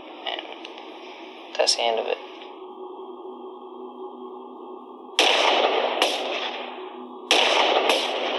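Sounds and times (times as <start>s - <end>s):
speech: 1.6s - 2.3s
sharp loud gunshots fired at a man in a house: 5.2s - 8.3s.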